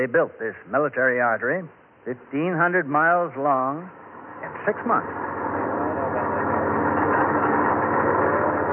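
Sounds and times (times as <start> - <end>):
speech: 0.0 - 5.3
convoy of military trucks rumbling over a newly built highway: 3.3 - 8.7.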